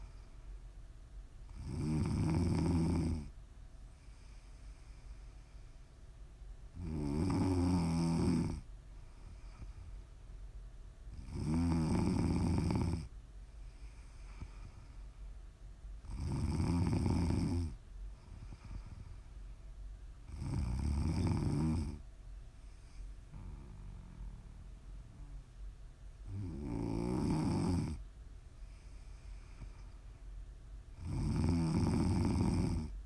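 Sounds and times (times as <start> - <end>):
quiet breathing: 0.0 - 6.8, 7.5 - 33.0
faint hiss of noise: 0.0 - 33.0
heavy rumbling snoring: 1.5 - 3.3, 6.8 - 8.7, 11.1 - 13.1, 16.0 - 19.1, 20.3 - 22.0, 22.7 - 25.4, 26.2 - 28.0, 31.0 - 33.0.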